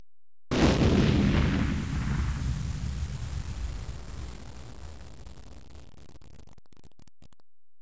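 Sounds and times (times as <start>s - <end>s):
explosion: 0.5s - 6.2s.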